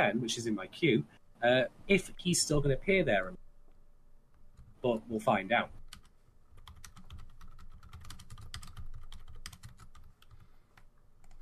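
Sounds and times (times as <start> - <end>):
speech: 0.0 - 3.4, 4.8 - 5.8
typing on a computer keyboard: 5.8 - 11.4.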